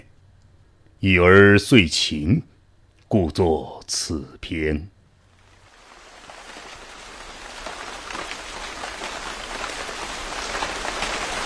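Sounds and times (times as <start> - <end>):
speech: 1.0 - 2.5, 3.1 - 4.9
steady rain pattering on hard surfaces: 5.3 - 11.4.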